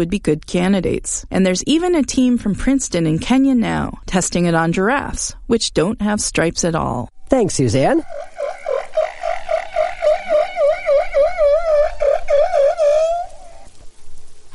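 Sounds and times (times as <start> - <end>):
speech: 0.0 - 8.4
humpback whale song: 7.7 - 13.8.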